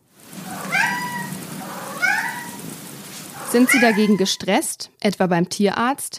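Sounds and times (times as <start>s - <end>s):
rain hiss: 0.0s - 4.6s
cat meowing to be let outside: 0.4s - 2.6s, 3.3s - 4.4s
speech: 3.5s - 6.1s.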